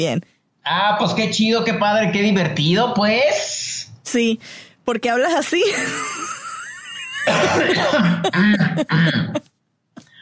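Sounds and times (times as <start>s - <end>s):
speech: 0.0s - 6.1s, 7.3s - 9.5s
person coughing from choking: 7.2s - 9.5s.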